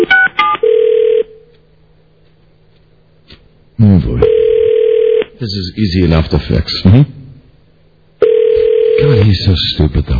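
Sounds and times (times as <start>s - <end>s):
longer steady phone tone: 0.0s - 1.4s, 4.2s - 5.3s, 8.2s - 9.2s
speech: 5.4s - 7.2s, 9.3s - 10.1s.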